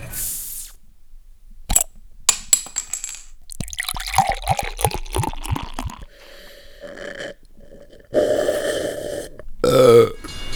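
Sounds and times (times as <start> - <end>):
person drinking beer: 3.5 - 10.4.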